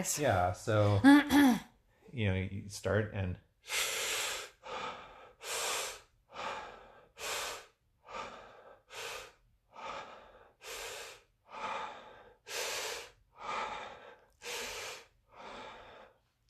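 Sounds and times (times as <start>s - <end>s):
speech: 0.0s - 3.9s
continuous circular breathwork breathing: 3.6s - 16.4s.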